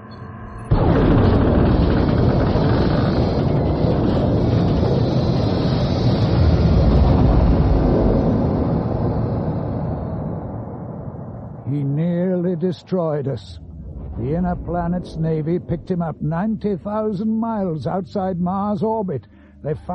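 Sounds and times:
explosion blast: 0:00.6 - 0:12.5, 0:13.5 - 0:17.0
speech: 0:12.6 - 0:13.6, 0:14.2 - 0:19.9.

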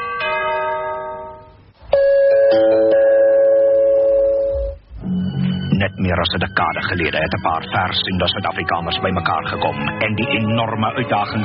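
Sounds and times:
two-note doorbell chime: 0:00.0 - 0:04.8
speech: 0:05.8 - 0:11.4.

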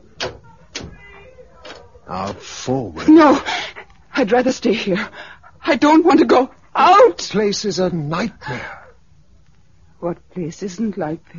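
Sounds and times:
faint lingering hum: 0:00.0 - 0:11.3
door opening with latch clunks: 0:00.2 - 0:02.4
speech: 0:02.1 - 0:08.8, 0:10.0 - 0:11.3.

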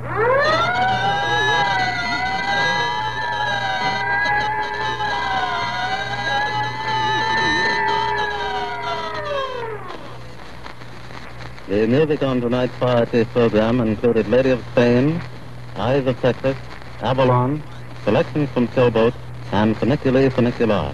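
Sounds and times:
fire siren wailing: 0:00.0 - 0:10.4
low steady hum: 0:00.0 - 0:20.9
speech: 0:11.8 - 0:20.9.

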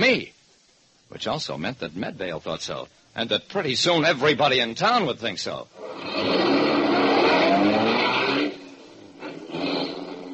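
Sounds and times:
speech: 0:00.1 - 0:00.4, 0:01.1 - 0:06.4
car engine revving as the car drives off: 0:05.8 - 0:10.3.

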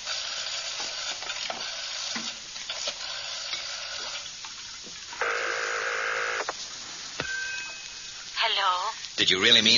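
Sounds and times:
steady hiss: 0:00.0 - 0:09.7
sustained buzzy telephone tone: 0:05.2 - 0:06.5, 0:07.2 - 0:08.9
speech: 0:08.9 - 0:09.7.

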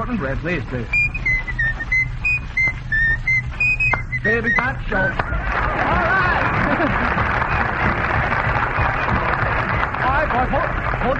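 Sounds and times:
low hum: 0:00.0 - 0:11.1
speech: 0:00.1 - 0:01.2, 0:04.2 - 0:06.2, 0:10.2 - 0:11.1
person whistling a quick tune: 0:00.9 - 0:05.0
laughter: 0:05.2 - 0:10.3.

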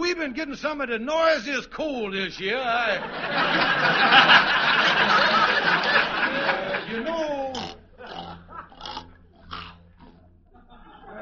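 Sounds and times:
speech: 0:00.2 - 0:07.6
laughter: 0:02.4 - 0:08.9, 0:10.4 - 0:11.2
pig-like squealing and grunting: 0:07.5 - 0:10.3.

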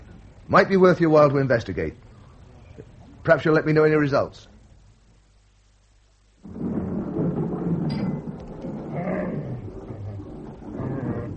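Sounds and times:
speech: 0:00.5 - 0:02.1, 0:02.8 - 0:04.5
thunder from an approaching storm: 0:06.4 - 0:11.3.

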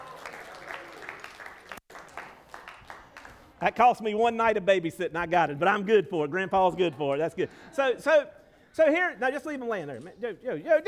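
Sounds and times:
dense crowd applause: 0:00.0 - 0:03.5
speech: 0:03.6 - 0:10.8.

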